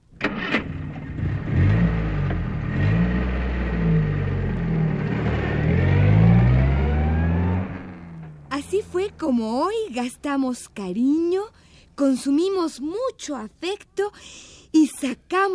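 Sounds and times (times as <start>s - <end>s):
car engine cranking, revving and idling: 0.2s - 10.6s
speech: 9.1s - 15.5s.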